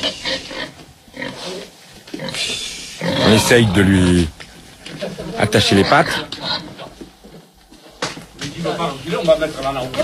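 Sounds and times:
speech: 0.0 - 0.7, 3.3 - 4.4, 5.4 - 6.6, 8.6 - 10.0
pig grunting and squealing: 0.0 - 4.4, 5.5 - 6.9.

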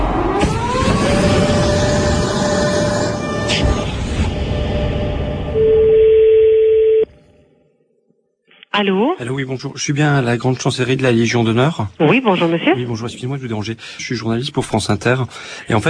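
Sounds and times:
dense rumbling noise: 0.0 - 5.6
telephone ringing tone of an outgoing call: 5.6 - 7.1
speech: 8.8 - 15.8.

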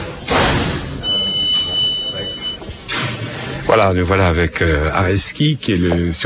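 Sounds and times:
prison door clanking shut: 0.0 - 1.0
faint murmur: 0.0 - 6.2
speech: 3.7 - 6.2.

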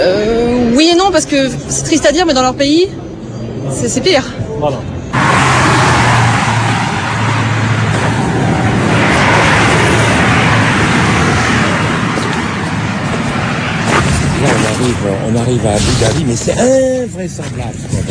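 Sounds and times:
road traffic roar on the approach to Abu Dhabi: 0.0 - 18.1
speech: 1.1 - 5.3, 14.8 - 18.1
huge construction trucks engine rumble on the approach to Abu Dhabi: 4.8 - 18.1.

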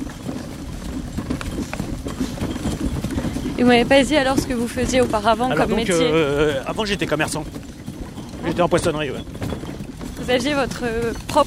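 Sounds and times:
horse hooves trotting: 0.0 - 11.4
speech: 3.6 - 7.7, 8.4 - 9.4, 10.3 - 11.4.

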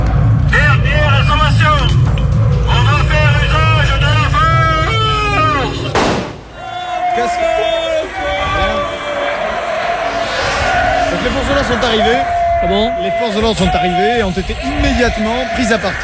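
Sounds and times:
crowd noise: 0.0 - 16.0
people shouting: 4.6 - 16.0
grenade shot fired beyond a barricade: 5.9 - 6.6
speech: 11.9 - 16.0.

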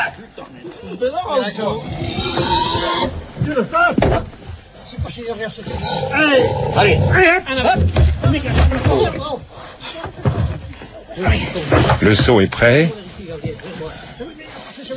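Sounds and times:
speech: 0.1 - 10.2, 11.2 - 14.9
pig squealing while being held down in the snow: 1.8 - 3.2, 5.6 - 7.3.

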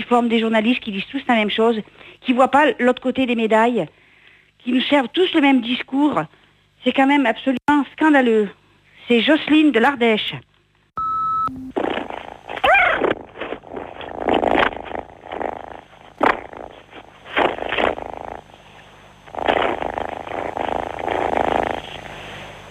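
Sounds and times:
speech: 0.1 - 4.0, 4.6 - 10.5
short electronic beep: 11.0 - 11.7
cat purring as if over a phone line: 13.1 - 22.4.

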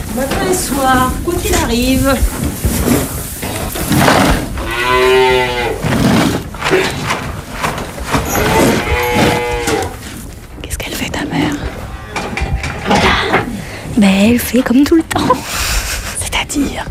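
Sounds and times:
cows shuffling in a barn: 0.0 - 16.2
speech: 0.2 - 3.1, 14.0 - 15.8, 16.6 - 16.8
cows mooing in a barn: 3.4 - 10.2, 11.6 - 13.6.

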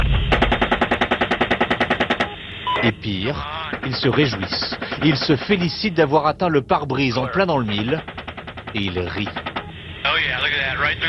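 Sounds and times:
machine-gun fire from a helicopter aimed at an ambulance: 0.0 - 2.4, 3.6 - 5.7, 7.6 - 9.7
speech: 2.8 - 11.0.

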